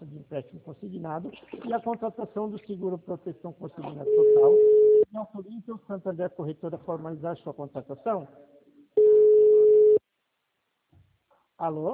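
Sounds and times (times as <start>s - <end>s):
speech: 0.2s - 9.1s, 11.6s - 11.9s
telephone busy tone after a dropped call: 4.0s - 5.0s, 9.0s - 10.0s.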